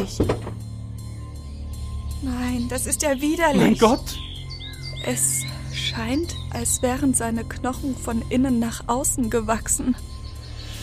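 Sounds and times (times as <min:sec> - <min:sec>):
door opening with a thunk: 0:00.0 - 0:00.6
speech: 0:00.0 - 0:00.6, 0:02.2 - 0:04.3, 0:05.0 - 0:10.1.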